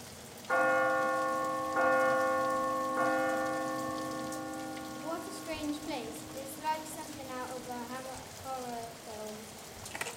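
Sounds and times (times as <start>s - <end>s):
deep resonant door bell at a huge old house: 0.5s - 8.0s.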